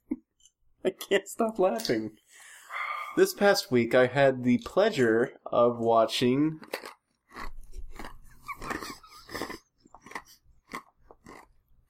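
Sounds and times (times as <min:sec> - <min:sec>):
speech: 0:00.8 - 0:02.3, 0:03.2 - 0:06.9
crunchy chewing of ice: 0:06.5 - 0:11.8.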